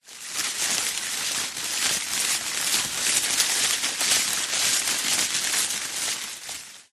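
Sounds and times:
thick healthy leafy tree branch rustling: 0.0s - 6.9s.

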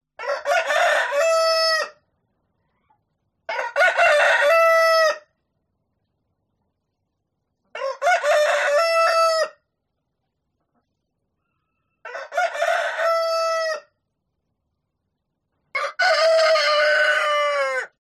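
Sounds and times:
rooster crowing: 0.2s - 2.0s, 3.5s - 5.3s, 7.7s - 9.6s, 11.6s - 13.9s, 15.7s - 18.0s.

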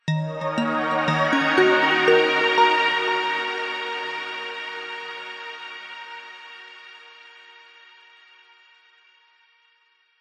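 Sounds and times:
warm positive arpeggiated multimedia musical logo ident: 0.1s - 6.8s.

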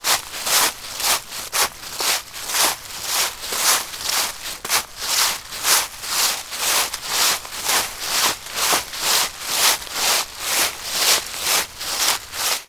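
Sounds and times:
foley footsteps on dry leaves on a forest floor: 0.0s - 12.6s.

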